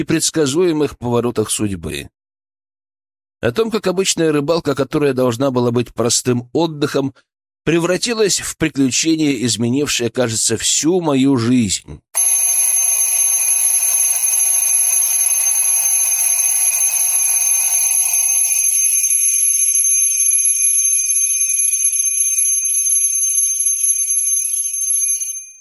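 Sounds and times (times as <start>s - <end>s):
speech: 0.0s - 2.2s, 3.4s - 12.7s
alarm clock ringing: 12.2s - 25.5s.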